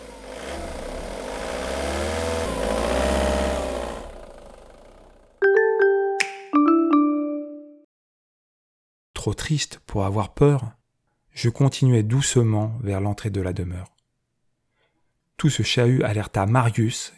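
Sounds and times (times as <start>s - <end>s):
delivery truck engine revving and pulling away: 0.0s - 5.4s
two ringing chime tones: 5.4s - 7.8s
speech: 9.3s - 10.8s, 11.4s - 13.9s, 15.4s - 17.1s.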